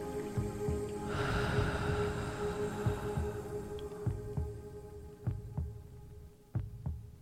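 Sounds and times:
soft hum: 0.0s - 6.3s
heartbeat: 0.4s - 7.1s
breathy whoosh: 1.0s - 4.3s.

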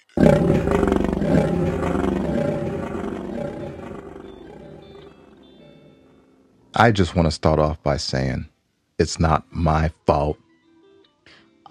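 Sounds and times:
lion roaring: 0.0s - 5.4s
speech: 6.8s - 10.4s.

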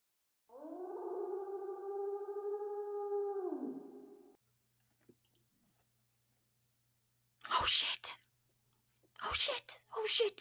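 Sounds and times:
creature howl: 0.5s - 4.4s
speech: 10.1s - 10.3s.

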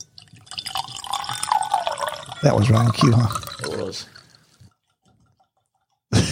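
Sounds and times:
liquor pouring into a glass: 0.0s - 6.0s
person answering: 1.6s - 3.9s
speech: 2.4s - 4.2s.

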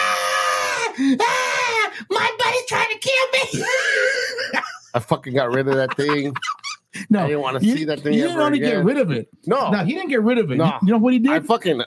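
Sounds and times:
person imitating a toy doll's shrill scream: 0.0s - 4.4s
speech: 1.0s - 1.6s, 5.0s - 11.8s
laughter: 3.5s - 8.6s.

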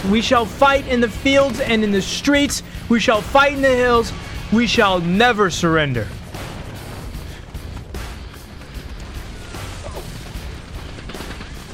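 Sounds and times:
speech: 0.0s - 6.2s
bomb explosions in battle: 6.0s - 11.7s
gunfire in battle: 6.1s - 11.7s.

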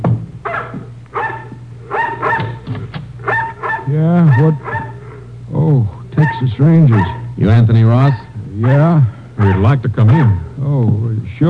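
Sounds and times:
low steady hum: 0.0s - 11.4s
mongrel dog barking at people's heels: 0.4s - 2.6s, 3.2s - 5.2s, 6.2s - 7.4s, 8.0s - 10.4s
speech: 3.9s - 4.7s, 5.7s - 11.4s.

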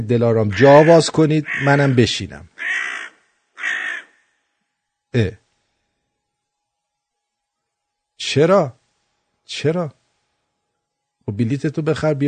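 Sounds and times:
speech: 0.0s - 2.9s, 5.1s - 5.4s, 8.2s - 8.8s, 9.5s - 10.0s, 11.2s - 12.2s
crow cawing harshly: 0.5s - 2.0s, 2.6s - 4.3s.

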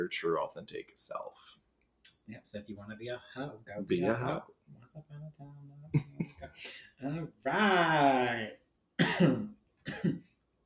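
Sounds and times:
speech: 0.0s - 1.6s, 2.3s - 10.3s
harsh coughs: 9.0s - 10.3s.

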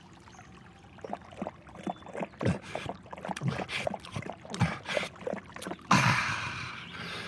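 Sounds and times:
flowing stream water: 0.0s - 7.2s
horse drinking: 0.9s - 5.9s.

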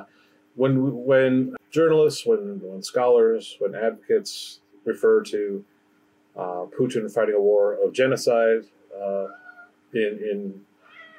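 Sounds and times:
speech: 0.0s - 5.7s, 6.4s - 10.7s
upset male cat meowing: 9.2s - 9.7s, 10.8s - 11.1s.

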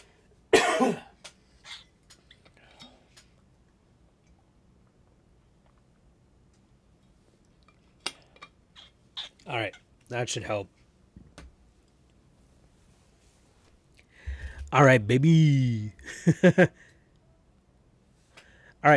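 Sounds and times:
coughing and throat clearing: 0.5s - 1.8s
speech: 0.8s - 1.1s, 9.5s - 10.8s, 14.7s - 16.9s.

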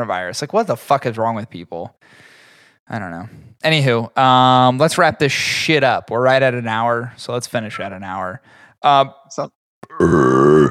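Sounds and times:
speech: 0.0s - 2.3s, 2.9s - 10.6s
loud drawn-out burp after drinking bourbon: 9.8s - 10.6s
short throaty grunts: 9.8s - 10.6s.

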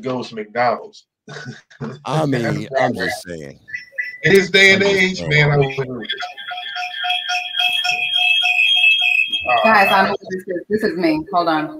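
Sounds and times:
speech: 0.0s - 6.6s, 9.5s - 11.7s
people talking loudly: 2.0s - 3.6s, 4.2s - 6.2s, 9.4s - 11.7s
phone alarm ringing: 6.1s - 10.3s.

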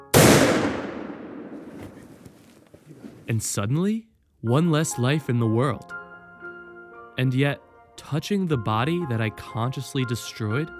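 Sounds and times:
hunting gun gunshot in the woods: 0.0s - 2.4s
speech: 3.3s - 6.0s, 7.2s - 10.7s.

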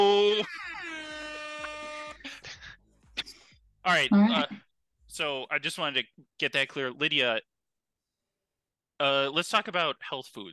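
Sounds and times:
air horn blast: 0.9s - 2.3s
speech: 3.9s - 7.5s, 9.0s - 10.5s
person exclaiming: 4.1s - 4.6s.

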